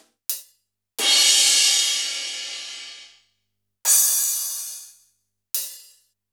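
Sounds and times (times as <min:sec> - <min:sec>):
sliced drum machine kit hits: 0:01.0 - 0:03.1.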